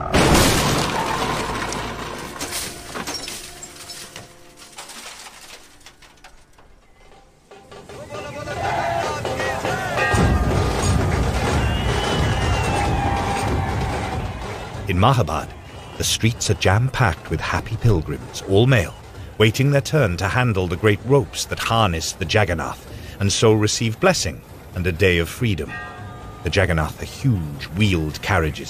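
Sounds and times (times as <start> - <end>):
glass shattering in a car crash: 0.0 - 7.4
tinkling fragments from a car crash: 0.0 - 7.9, 9.9 - 12.4
car crash debris clattering: 0.0 - 8.3, 9.2 - 23.1
metal crunching in a car crash with a bullock cart: 0.0 - 23.1
Morris car tyres screeching on a road: 0.0 - 28.6
Morris car brakes squealing: 0.9 - 28.6
speech: 15.0 - 28.6.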